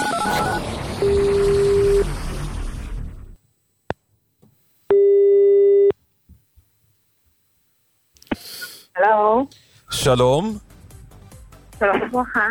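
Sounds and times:
telephone ringing tone as a radio station computer dials a listener: 0:00.0 - 0:02.1, 0:04.9 - 0:05.9
speech: 0:09.1 - 0:10.7, 0:11.8 - 0:12.5.

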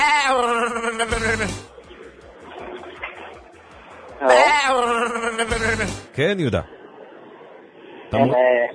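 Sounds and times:
goat bleating: 0:00.0 - 0:01.5, 0:04.3 - 0:05.7
speech: 0:01.0 - 0:01.8, 0:04.2 - 0:06.8, 0:08.1 - 0:08.7.

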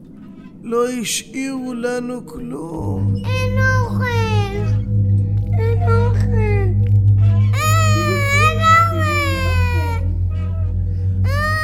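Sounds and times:
steady low hum: 0:00.0 - 0:11.6
speech: 0:00.6 - 0:05.0
hungry child crying: 0:03.2 - 0:04.9, 0:05.6 - 0:06.8, 0:07.5 - 0:10.1, 0:11.2 - 0:11.6.

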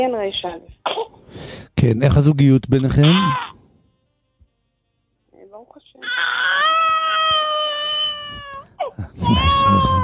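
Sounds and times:
speech: 0:00.0 - 0:03.5, 0:09.2 - 0:10.0
baby crying: 0:03.0 - 0:03.6, 0:06.0 - 0:10.0.

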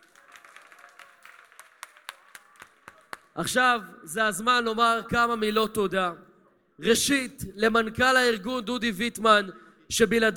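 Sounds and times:
audience applause: 0:00.0 - 0:03.4
speech: 0:03.4 - 0:10.3.

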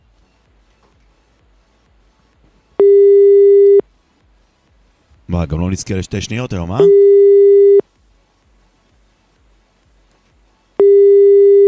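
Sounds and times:
long steady electronic telephone ringing tones before voicemail: 0:02.8 - 0:03.8, 0:06.8 - 0:07.8, 0:10.8 - 0:11.6
speech: 0:05.4 - 0:07.2.

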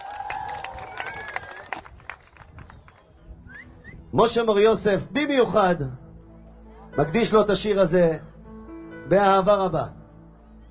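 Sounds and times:
audience applause: 0:00.0 - 0:03.1
brief whistle-like tone: 0:03.4 - 0:04.1
speech: 0:04.1 - 0:06.0, 0:07.0 - 0:08.3, 0:09.1 - 0:10.0.

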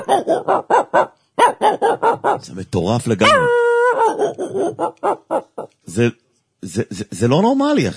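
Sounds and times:
man imitating a dog barking on a radio broadcast: 0:00.0 - 0:02.5, 0:03.2 - 0:05.7
speech: 0:00.0 - 0:07.9.

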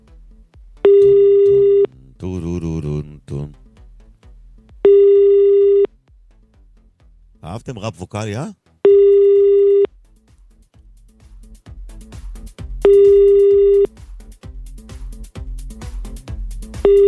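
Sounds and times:
soft plucked music: 0:00.8 - 0:01.9
payphone line ringing with an electronic tone: 0:00.9 - 0:01.9, 0:04.9 - 0:05.9, 0:08.9 - 0:09.9, 0:12.9 - 0:13.9, 0:16.9 - 0:17.0
speech: 0:07.6 - 0:08.6.

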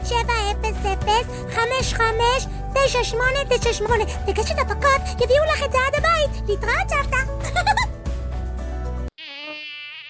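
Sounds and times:
speech: 0:00.1 - 0:07.7
mosquito buzzing: 0:08.8 - 0:10.0.

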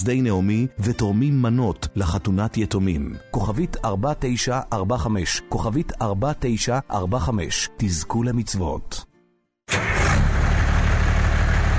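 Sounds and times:
speech: 0:00.0 - 0:09.1
old diesel vehicle engine starting and idling: 0:09.7 - 0:11.7.

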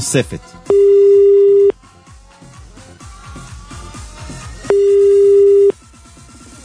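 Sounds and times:
speech: 0:00.0 - 0:01.2
rhythmic sound: 0:00.0 - 0:05.7
telephone ringback tone calling a public payphone: 0:00.7 - 0:01.7, 0:04.7 - 0:05.7.

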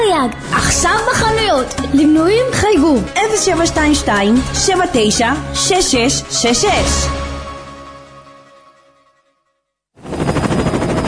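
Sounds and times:
music: 0:00.0 - 0:09.9
speech: 0:00.2 - 0:07.3
huge helicopter rotor roar: 0:10.0 - 0:11.0.

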